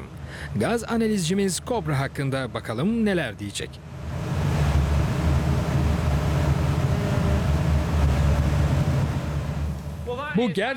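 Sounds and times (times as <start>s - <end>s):
speech: 0.4s - 4.0s, 10.4s - 10.7s
engine with a newly fitted exhaust system idling while warming up: 4.1s - 10.2s.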